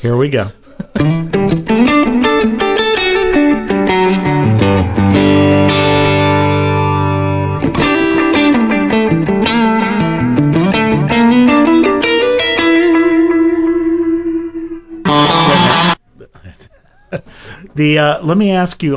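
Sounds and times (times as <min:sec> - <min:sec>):
speech: 0:00.0 - 0:01.2, 0:17.8 - 0:18.9
electric guitar played through a tape echo effect: 0:00.9 - 0:16.0.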